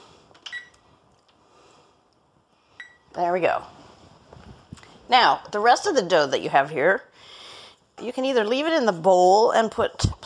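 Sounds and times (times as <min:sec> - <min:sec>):
kitchen timer beeping as it is set for baking: 0:02.8 - 0:03.0
speech: 0:03.2 - 0:03.8, 0:05.1 - 0:07.1, 0:08.0 - 0:10.2.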